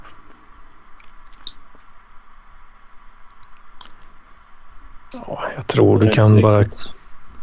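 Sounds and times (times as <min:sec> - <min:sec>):
low electronic hum: 0:00.0 - 0:07.4
computer mouse clicks ticking options in a settings form: 0:03.2 - 0:04.0
murmur of voice: 0:05.1 - 0:07.0
speech: 0:05.1 - 0:07.0.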